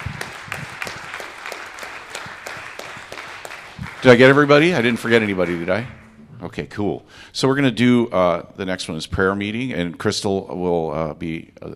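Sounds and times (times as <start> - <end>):
crowd applauding: 0.0 - 6.2
speech: 4.0 - 11.7.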